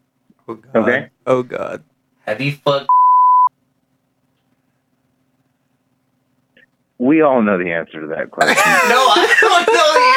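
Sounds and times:
speech: 0:00.5 - 0:03.0, 0:07.0 - 0:10.1
censor bleep over a spoken name: 0:02.9 - 0:03.5
laughter: 0:08.4 - 0:10.1.

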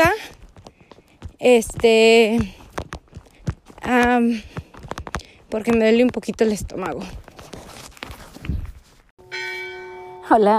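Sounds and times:
footsteps: 0:00.0 - 0:09.1
scuffing: 0:00.0 - 0:09.1
speech: 0:01.4 - 0:02.6, 0:03.9 - 0:04.6, 0:05.5 - 0:07.2, 0:10.3 - 0:10.5
church bell strike in Villa Mayor de Monjardín on a mountain: 0:09.2 - 0:10.3.

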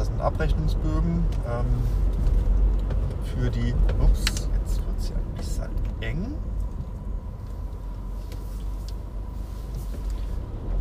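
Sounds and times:
car engine and road rumble driving after a traffic jam: 0:00.0 - 0:10.7
speech: 0:00.2 - 0:06.5.

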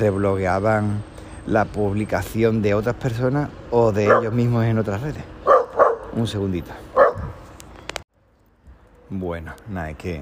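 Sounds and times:
speech: 0:00.0 - 0:05.3, 0:06.1 - 0:06.8, 0:09.1 - 0:10.1
dog barking: 0:04.0 - 0:04.4, 0:05.4 - 0:06.2, 0:06.9 - 0:07.4.

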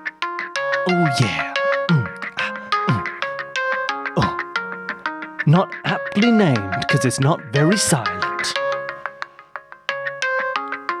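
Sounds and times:
phone ringtone of bright plucked electronic notes: 0:00.6 - 0:10.9
speech: 0:00.9 - 0:02.1, 0:05.5 - 0:08.6.

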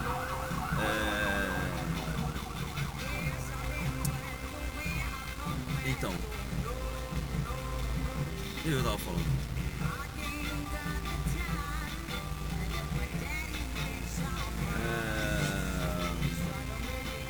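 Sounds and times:
ambulance siren wailing: 0:00.0 - 0:04.0, 0:14.7 - 0:16.5
loud rumble of street traffic: 0:00.0 - 0:17.2
speech: 0:06.0 - 0:06.6, 0:08.7 - 0:09.5.

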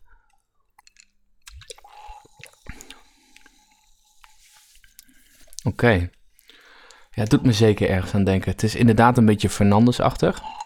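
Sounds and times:
sipping a clear fizzy soft drink from a marble-stoppered bottle: 0:00.7 - 0:05.7, 0:10.4 - 0:10.6
small mouth clicks: 0:00.8 - 0:03.5
speech: 0:05.6 - 0:06.2, 0:07.2 - 0:10.6.

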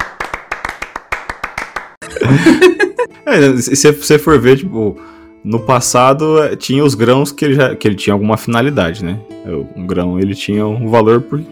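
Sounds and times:
applause of sharp hand claps: 0:00.0 - 0:02.0
laughter: 0:02.0 - 0:03.1
speech: 0:02.1 - 0:11.5.

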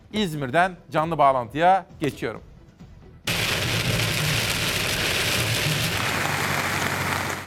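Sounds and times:
speech: 0:00.1 - 0:02.5
heavy rain pouring onto surfaces: 0:03.3 - 0:07.4.

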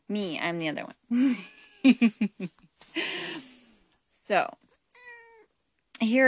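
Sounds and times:
speech: 0:00.1 - 0:03.0, 0:04.3 - 0:04.6, 0:06.0 - 0:06.2
kitten meowing: 0:05.0 - 0:05.5.

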